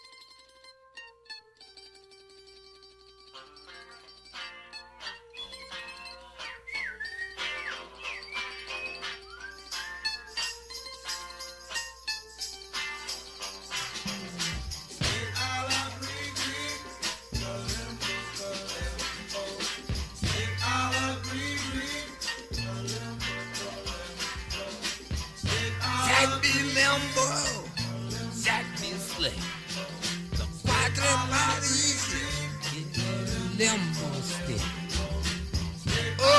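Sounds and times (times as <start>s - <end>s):
upbeat instrumental music track with bright melodic lines: 3.6s - 36.3s
deep bass and steady beat: 14.3s - 15.6s, 19.9s - 20.8s, 30.4s - 31.4s, 32.3s - 36.3s.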